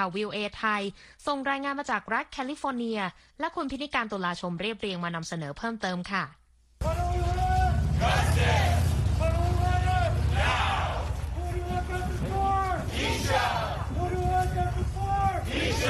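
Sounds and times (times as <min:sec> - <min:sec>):
speech: 0:00.0 - 0:07.3
loud hubbub of many voices: 0:06.8 - 0:15.8
protest crowd chanting for justice outdoors in San Francisco California: 0:06.8 - 0:15.8.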